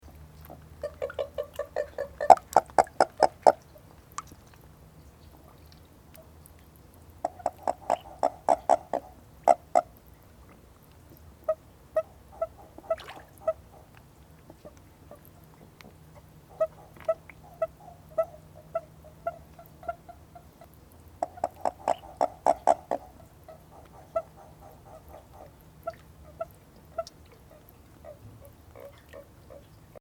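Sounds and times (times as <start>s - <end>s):
Bufo japonicus formosus calling: 0.8s - 3.7s, 7.2s - 10.0s, 11.5s - 15.2s, 16.2s - 29.7s.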